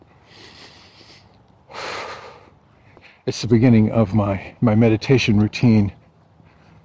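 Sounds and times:
deep cleansing breaths in through the nose and out through the mouth: 0.1s - 3.2s
speech: 3.2s - 6.0s.

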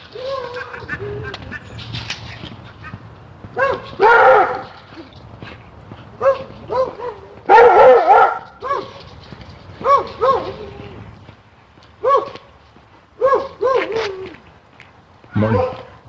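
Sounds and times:
dog barking behind a fence: 3.6s - 4.8s, 6.2s - 9.0s, 9.8s - 10.6s, 12.0s - 12.4s, 13.2s - 14.1s, 15.3s - 16.0s.

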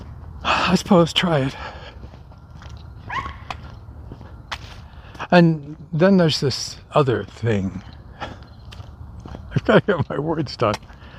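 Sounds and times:
speech: 0.7s - 1.8s, 5.3s - 7.9s, 9.6s - 10.9s
small dog yapping: 3.1s - 3.5s.

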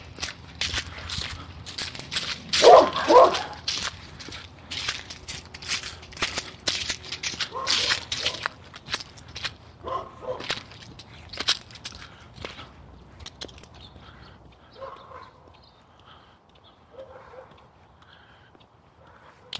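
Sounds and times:
shuffling noises: 0.0s - 15.2s
dogs barking outdoors in the morning: 2.5s - 3.9s, 7.4s - 8.6s, 9.8s - 10.8s, 14.0s - 15.7s, 16.8s - 17.8s, 19.0s - 19.5s.

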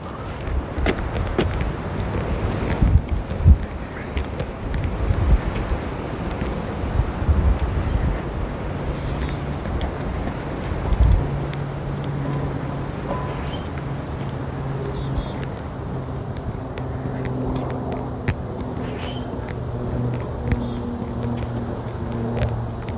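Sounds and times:
engine hum: 0.0s - 22.9s
gusty wind buffeting across an outdoor scene: 0.0s - 22.9s
faint bird chirps: 7.8s - 9.5s, 12.2s - 13.8s, 14.5s - 15.6s, 18.8s - 19.4s, 20.2s - 21.6s.

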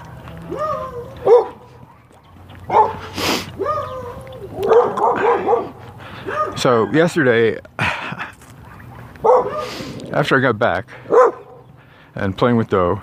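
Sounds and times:
dog barking and yipping excitedly: 0.4s - 2.1s, 2.7s - 7.0s, 9.2s - 9.8s, 11.1s - 11.6s
speech: 0.5s - 1.4s, 6.6s - 7.7s, 10.2s - 11.2s, 12.2s - 13.0s.

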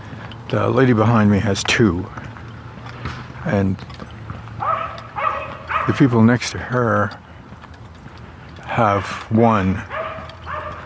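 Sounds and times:
speech: 0.5s - 2.2s, 3.4s - 4.0s, 5.9s - 7.2s, 8.8s - 9.9s
small yappy dog barking: 4.6s - 6.0s, 9.9s - 10.8s.

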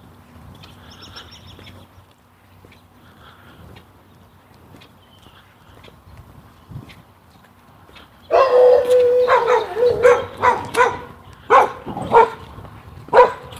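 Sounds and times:
dogs yelping with a strained howling tone: 8.3s - 12.5s, 13.1s - 13.5s
dogs barking: 8.3s - 13.5s.

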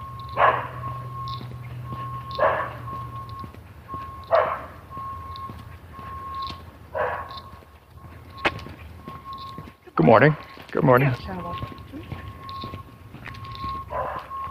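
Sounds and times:
small dog barking: 0.3s - 1.0s, 2.3s - 2.9s, 4.3s - 4.8s, 6.9s - 7.5s, 13.9s - 14.3s
speech: 10.1s - 11.4s.

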